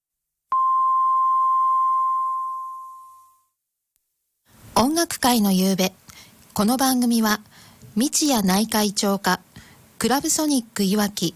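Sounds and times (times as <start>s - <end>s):
hourly time signal beep marking 7 p.m.: 0.5s - 3.4s
speech: 4.8s - 6.0s, 6.6s - 11.3s.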